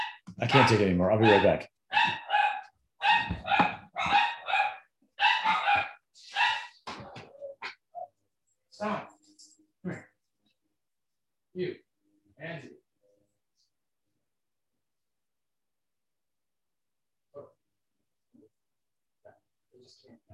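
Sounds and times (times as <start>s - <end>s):
dog barking: 0.0s - 6.8s
speech: 0.4s - 2.2s.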